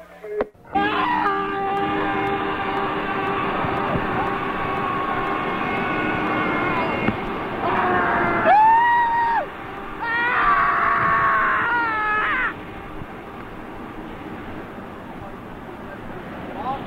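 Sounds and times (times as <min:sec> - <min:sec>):
steady rushing noise: 0:00.5 - 0:16.8
person screaming with head out window: 0:00.8 - 0:01.4, 0:07.9 - 0:12.5.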